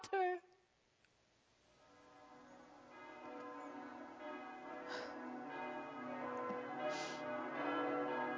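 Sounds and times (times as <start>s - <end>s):
church bells ringing: 1.7s - 8.3s.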